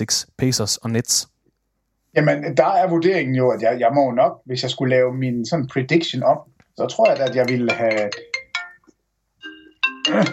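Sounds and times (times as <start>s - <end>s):
speech: 0.0s - 1.4s, 2.1s - 8.3s, 10.1s - 10.3s
electronic incoming-call ringtone on a computer: 6.9s - 10.3s.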